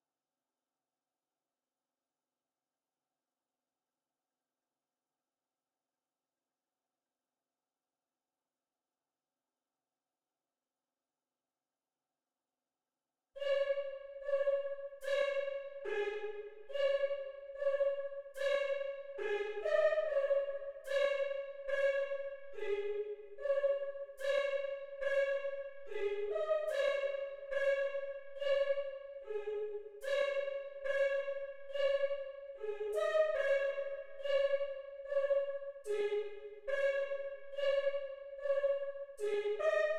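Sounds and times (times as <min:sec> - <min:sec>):
choir singing in C sharp minor at 144 BPM: 0:13.4 - 0:39.9.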